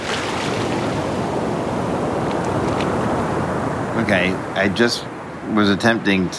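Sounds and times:
faint splashes while wading into sea: 0:00.0 - 0:03.6
breaking ocean surf: 0:00.0 - 0:06.3
speech: 0:04.1 - 0:06.3.

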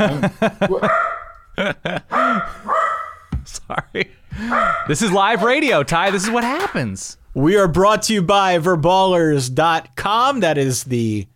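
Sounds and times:
speech: 0:00.0 - 0:02.4, 0:04.0 - 0:11.3
laughter: 0:00.0 - 0:02.7, 0:03.5 - 0:06.9
dog barking: 0:00.8 - 0:01.4, 0:02.1 - 0:03.3, 0:04.4 - 0:05.6.

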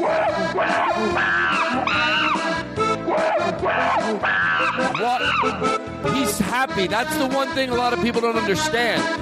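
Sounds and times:
chimpanzee screaming: 0:00.0 - 0:05.7
speech: 0:05.0 - 0:09.2.

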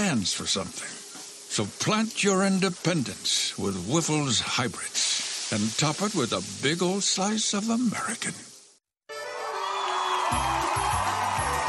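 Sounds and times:
speech: 0:00.1 - 0:08.5
large crowd cheering: 0:09.1 - 0:11.6.

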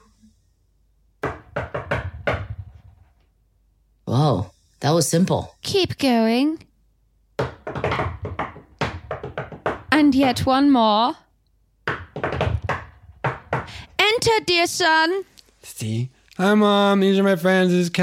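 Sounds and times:
rhythmic secret knock pattern on a door: 0:01.2 - 0:02.8, 0:07.4 - 0:11.0, 0:11.8 - 0:14.4
speech: 0:04.1 - 0:06.7, 0:10.0 - 0:11.2, 0:14.2 - 0:18.0.

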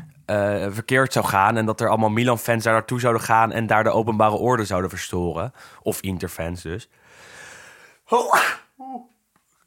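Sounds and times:
speech: 0:00.3 - 0:07.3, 0:08.1 - 0:09.1
loud sneeze: 0:08.1 - 0:08.8.

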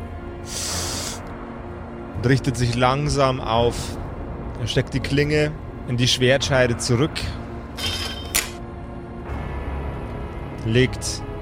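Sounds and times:
man sniffing through the nose: 0:00.4 - 0:01.3
speech: 0:02.2 - 0:04.0, 0:04.6 - 0:07.9, 0:10.7 - 0:11.3.

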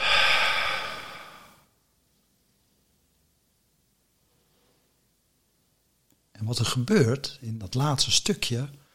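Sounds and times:
deep breathy exhale: 0:00.0 - 0:01.7
speech: 0:06.5 - 0:08.8.

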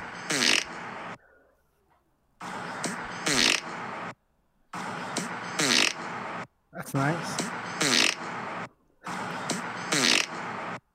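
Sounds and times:
loud raspy fart sound: 0:00.2 - 0:00.9, 0:02.4 - 0:03.8, 0:04.8 - 0:06.2, 0:07.4 - 0:08.4, 0:09.1 - 0:10.5
speech: 0:06.8 - 0:07.5.

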